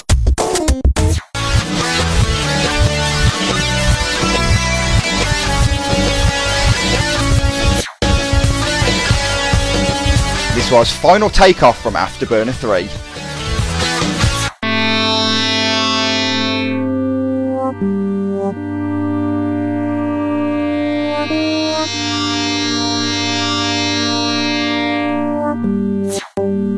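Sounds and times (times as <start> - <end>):
video game soundtrack music with layered sustained synthesizer tones: 1.0 - 26.7
speech: 10.7 - 13.1.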